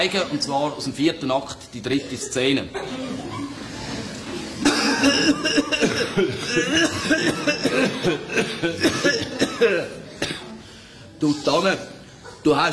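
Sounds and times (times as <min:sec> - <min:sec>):
speech: 0:00.0 - 0:03.4, 0:05.0 - 0:10.0, 0:11.2 - 0:12.7
laughter: 0:02.0 - 0:10.2, 0:12.0 - 0:12.7
person coughing in short harsh bursts: 0:04.6 - 0:10.6.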